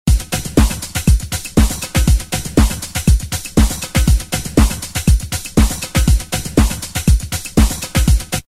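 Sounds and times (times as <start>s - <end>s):
Roland M-DC1 synthesizer music at 120: 0.1s - 8.4s.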